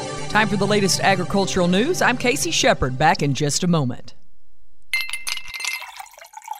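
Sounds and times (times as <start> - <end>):
speech: 0.3 - 4.2
cool water poured into a glass: 5.0 - 6.5.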